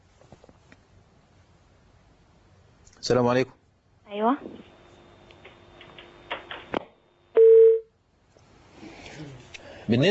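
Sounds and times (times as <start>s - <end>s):
speech: 3.0s - 4.7s, 9.9s - 10.1s
telephone call connecting tone: 7.4s - 7.9s.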